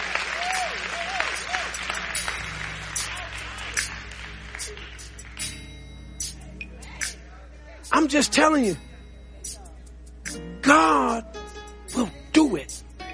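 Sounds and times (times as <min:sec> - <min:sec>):
congregation clapping: 0:00.0 - 0:05.5
sustained musical tones: 0:00.0 - 0:13.1
speech: 0:08.0 - 0:08.9.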